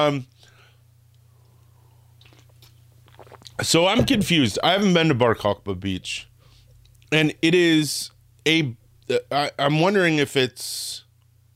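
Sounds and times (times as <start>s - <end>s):
speech: 0.0s - 0.5s, 3.6s - 6.3s, 7.1s - 11.0s
steady low electrical hum: 0.0s - 11.5s
person sipping coffee from a cup: 2.2s - 3.6s.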